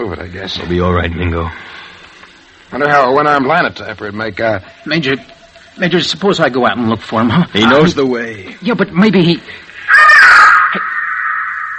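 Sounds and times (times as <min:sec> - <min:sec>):
speech: 0:00.1 - 0:01.8, 0:02.7 - 0:09.7
bird cawing: 0:09.8 - 0:11.7.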